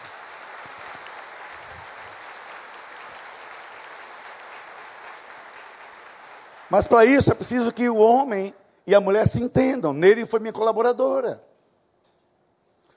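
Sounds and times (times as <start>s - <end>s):
applause from a large audience: 0.0s - 7.8s
speech: 6.7s - 11.5s.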